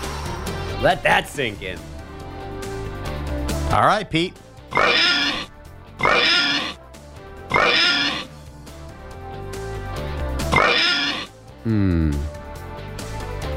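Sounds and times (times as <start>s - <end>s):
low music-like background: 0.0s - 13.5s
speech: 0.8s - 1.9s, 3.7s - 6.6s, 11.6s - 12.3s
pig oinking: 4.7s - 6.8s, 7.5s - 8.3s, 10.5s - 11.4s.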